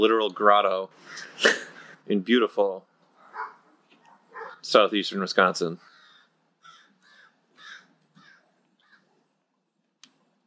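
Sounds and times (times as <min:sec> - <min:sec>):
speech: 0:00.0 - 0:03.5, 0:04.6 - 0:05.9
crows cawing: 0:01.0 - 0:02.0, 0:05.8 - 0:09.1.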